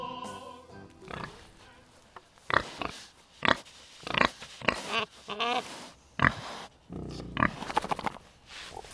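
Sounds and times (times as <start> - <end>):
pig grunting and squealing on a farm at a private butchering facility: 1.0 - 1.6, 2.4 - 8.0.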